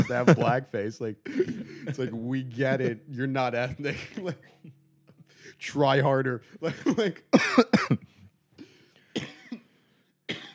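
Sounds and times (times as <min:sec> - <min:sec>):
laughter: 0:00.0 - 0:04.7, 0:06.6 - 0:07.3
speech: 0:00.1 - 0:04.8, 0:05.5 - 0:08.2
harsh smoker's coughing: 0:01.2 - 0:02.1, 0:06.7 - 0:08.2, 0:09.0 - 0:10.5.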